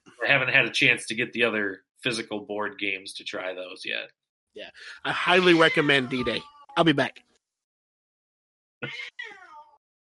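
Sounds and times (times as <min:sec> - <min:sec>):
speech: 0:00.3 - 0:07.3, 0:08.8 - 0:09.4
cat meowing: 0:05.2 - 0:06.8, 0:08.8 - 0:09.8.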